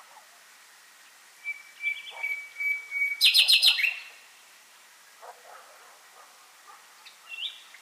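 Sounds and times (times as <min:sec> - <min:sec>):
common nightingale Luscinia megarhynchos singing whistles and trills: 0:01.4 - 0:04.2, 0:07.0 - 0:07.7.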